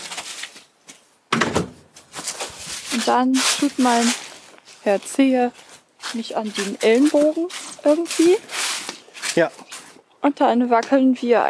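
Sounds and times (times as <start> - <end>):
louder sharper door clatter: 1.3 - 1.9
flat door bumps and scrapes as people step outside: 1.3 - 2.0
speech: 3.0 - 4.2, 4.8 - 8.6, 9.4 - 9.6, 10.2 - 11.4.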